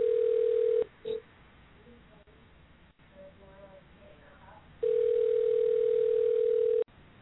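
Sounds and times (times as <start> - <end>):
ringback tone of an outgoing telephone call: 0.0 - 0.9, 4.8 - 6.9.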